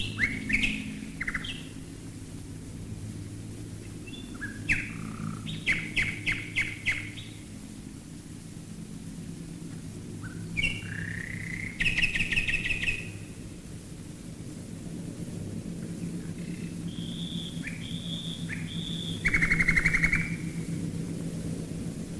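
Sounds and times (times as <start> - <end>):
common nightingale singing rich phrases: 0.0 - 1.8, 4.0 - 7.4, 10.2 - 13.3, 16.4 - 20.6
deep engine drone of bombers flying overhead: 0.0 - 12.1, 12.9 - 22.1.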